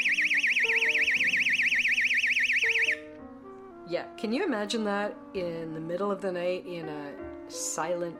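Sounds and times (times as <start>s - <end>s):
portable personal alarm wailing with warbling pitch sweep: 0.0s - 3.0s
speech: 3.9s - 8.1s.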